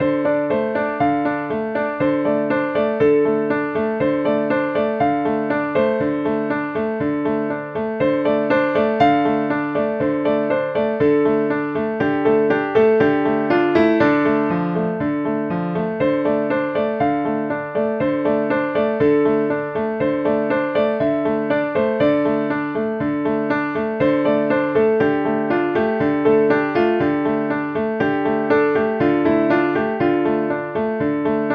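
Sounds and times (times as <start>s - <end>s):
grand piano: 0.0s - 31.5s.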